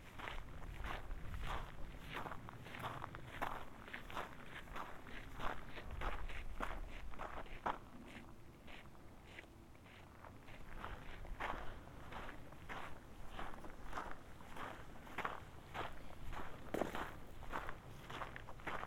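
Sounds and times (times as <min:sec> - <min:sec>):
footsteps on a gravel or dirt trail on the Colorado Trail: 0:00.1 - 0:18.8.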